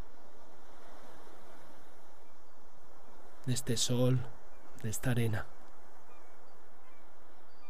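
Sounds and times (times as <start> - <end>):
ocean waves breaking on shore: 0.0 - 7.6
speech: 3.4 - 5.6
seagulls calling: 4.4 - 7.6.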